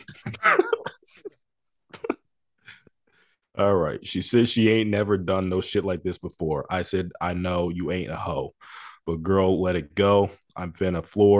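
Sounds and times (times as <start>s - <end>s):
person clearing throat with raspy bursts: 0.0s - 1.2s
speech: 3.6s - 11.3s.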